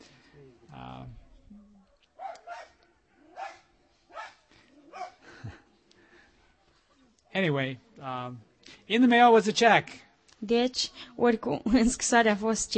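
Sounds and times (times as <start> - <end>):
dog barking: 2.2 - 5.2
speech: 7.4 - 12.7.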